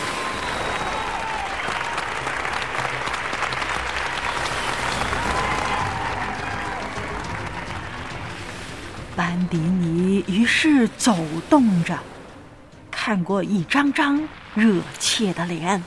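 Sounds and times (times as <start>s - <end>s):
whistles: 0.0s - 2.2s, 4.3s - 5.9s
large crowd applauding: 0.0s - 9.2s
speech: 9.5s - 12.1s, 13.0s - 15.8s.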